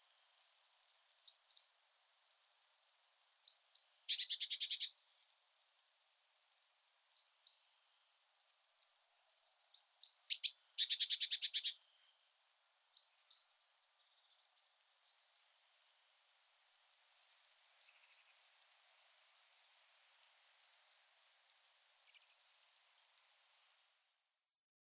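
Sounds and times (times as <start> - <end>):
Eurasian blue tit Cyanistes caeruleus song: 0.7 - 2.4, 3.4 - 5.0, 8.6 - 12.2, 12.8 - 14.0, 16.3 - 18.4, 21.7 - 22.8.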